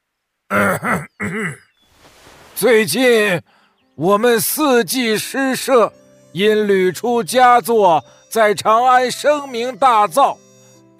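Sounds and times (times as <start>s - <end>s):
speech: 0.5s - 1.6s, 2.6s - 10.4s
voice imitating an old man clearing his throat: 0.5s - 1.7s.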